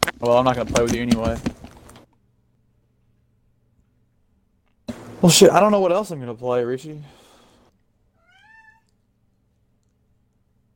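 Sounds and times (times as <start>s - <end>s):
speech: 0.2s - 1.6s, 5.2s - 7.2s
drawn-out cat meow: 8.1s - 9.0s.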